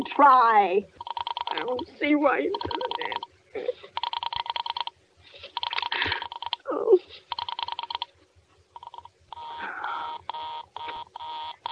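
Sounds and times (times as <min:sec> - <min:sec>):
speech: 0:00.0 - 0:04.0
faint low hum: 0:00.0 - 0:11.7
telephone busy signal: 0:01.0 - 0:01.6, 0:02.6 - 0:03.3, 0:04.0 - 0:04.9, 0:07.3 - 0:08.1, 0:08.8 - 0:11.7.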